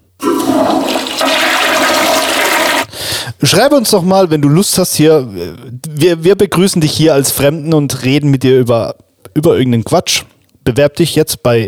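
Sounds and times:
toilet flushing: 0:00.0 - 0:03.0
toilet refilling with water: 0:00.0 - 0:03.0
speech: 0:03.4 - 0:11.6.

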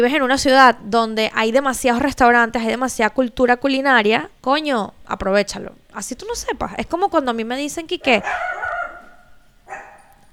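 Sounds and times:
speech: 0:00.0 - 0:08.7
female dogs barking and yapping at arriving visitor: 0:06.2 - 0:10.3.

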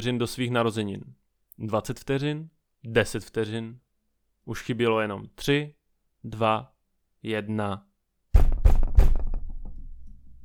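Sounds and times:
speech: 0:00.0 - 0:03.8, 0:04.5 - 0:07.9
heavy booming knocks on a door: 0:08.4 - 0:10.1.

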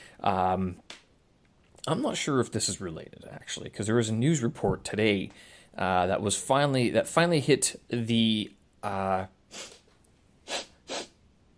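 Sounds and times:
speech: 0:00.2 - 0:00.9, 0:01.8 - 0:09.8
person sneezing: 0:09.5 - 0:09.8, 0:10.5 - 0:11.2.

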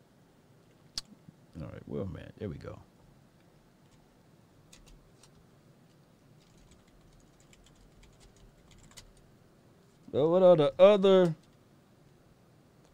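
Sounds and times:
low steady hum: 0:00.0 - 0:12.9
speech: 0:01.8 - 0:02.9, 0:10.1 - 0:11.4
computer keyboard typing: 0:04.7 - 0:05.3, 0:06.4 - 0:09.2.

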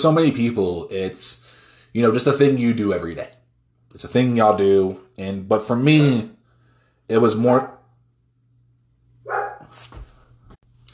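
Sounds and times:
speech: 0:00.0 - 0:06.4, 0:07.1 - 0:07.8
low steady hum: 0:00.0 - 0:10.9
dog barking at the door: 0:09.2 - 0:09.8
dog yelping: 0:09.3 - 0:09.7.

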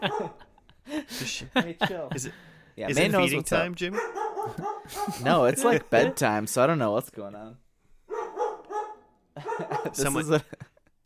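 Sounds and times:
dog barking and yelping excitedly: 0:00.0 - 0:00.5, 0:03.9 - 0:06.2, 0:08.1 - 0:10.1
laughter: 0:00.0 - 0:02.4, 0:04.5 - 0:06.2, 0:09.4 - 0:10.9
speech: 0:00.0 - 0:07.6, 0:09.4 - 0:10.7.

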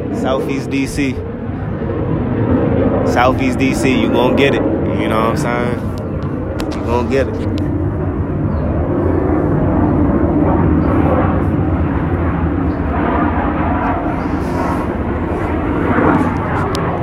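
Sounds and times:
large airplane engine roaring overhead: 0:00.0 - 0:17.0
speech: 0:00.2 - 0:01.3, 0:03.1 - 0:06.0, 0:06.7 - 0:07.7.

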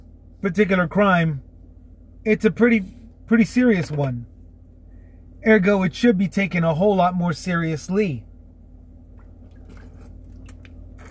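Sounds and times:
steady low hum: 0:00.0 - 0:11.0
speech: 0:00.4 - 0:01.5, 0:02.2 - 0:04.3, 0:05.4 - 0:08.3
person slurping and gulping bottled water: 0:09.5 - 0:11.0.

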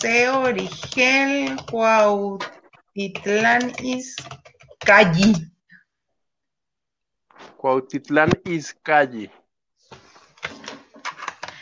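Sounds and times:
typing on a keyboard: 0:00.0 - 0:05.0, 0:10.4 - 0:11.5
speech: 0:00.0 - 0:05.5, 0:07.6 - 0:10.0.

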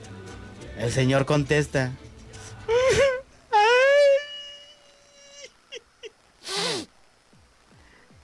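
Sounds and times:
speech: 0:00.8 - 0:02.0
man loudly imitating wailing cries as a joke: 0:02.7 - 0:05.9.

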